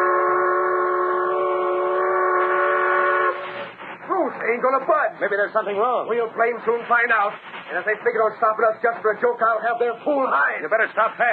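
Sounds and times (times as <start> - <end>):
steam train whistle blowing: 0.0 - 3.8
speech: 4.6 - 11.3.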